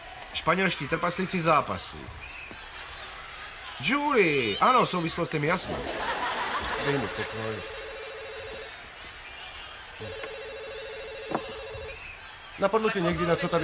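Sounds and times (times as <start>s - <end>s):
speech: 0.4s - 2.4s, 3.8s - 6.2s, 6.8s - 7.8s, 12.6s - 13.6s
laughter: 5.5s - 8.6s, 12.6s - 13.6s
telephone ringing with electronic trill: 6.5s - 8.8s, 10.0s - 12.0s, 13.2s - 13.6s.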